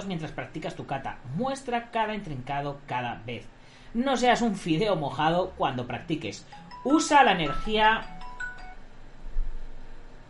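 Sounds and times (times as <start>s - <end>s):
speech: 0.0s - 8.2s
low hiss: 0.0s - 10.2s
electronic phone ring: 6.5s - 8.8s.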